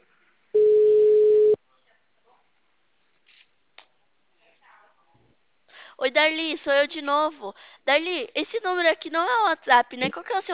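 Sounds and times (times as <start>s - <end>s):
telephone tone while calling someone again: 0.6s - 1.6s
speech: 6.0s - 10.5s.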